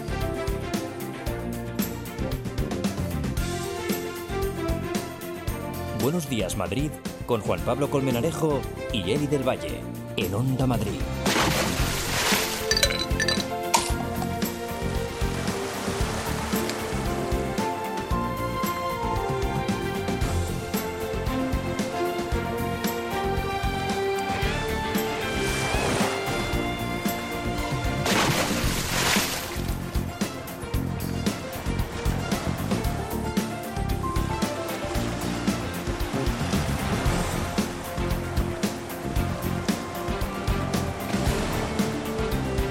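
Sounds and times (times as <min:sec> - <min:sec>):
tonal music-like layer: 0:00.0 - 0:42.6
speech: 0:06.0 - 0:11.8
gentle sea waves lapping: 0:11.1 - 0:42.6.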